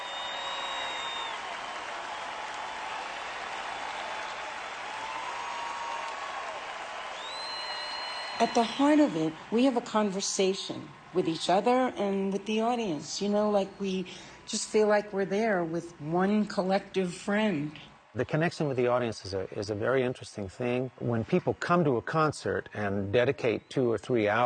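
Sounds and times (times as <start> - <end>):
crowd audience: 0.0 - 15.4, 16.6 - 24.3.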